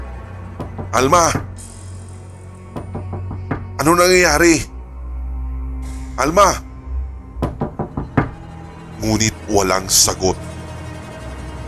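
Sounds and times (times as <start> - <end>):
sharp knocks on a bathroom door: 0.6 - 1.6, 2.8 - 3.8, 7.4 - 8.5
speech: 0.9 - 1.5, 3.8 - 4.7, 6.2 - 6.7, 9.0 - 10.4.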